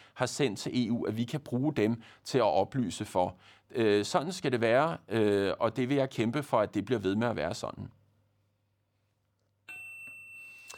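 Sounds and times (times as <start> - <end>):
speech: 0.2 - 8.0
text message notification chime: 9.7 - 10.7.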